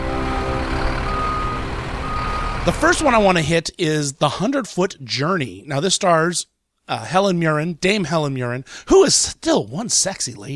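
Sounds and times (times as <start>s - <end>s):
large truck engine rumbling: 0.0s - 3.8s
truck reversing alarm warning beeps: 0.5s - 2.7s
speech: 2.6s - 10.5s.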